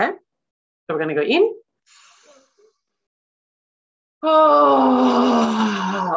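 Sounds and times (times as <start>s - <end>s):
speech: 0.9s - 2.0s, 4.2s - 6.1s
group exhaling loudly with a voiced groan during a breathing exercise: 4.2s - 6.1s.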